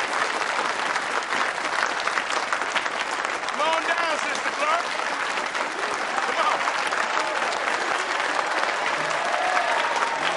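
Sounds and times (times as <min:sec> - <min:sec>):
crowd applauding: 0:00.0 - 0:10.3.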